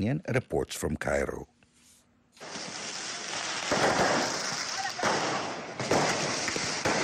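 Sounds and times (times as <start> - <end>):
speech: 0.0 - 1.5
firecrackers shot at police during street clashes outside Cairo: 2.4 - 7.0.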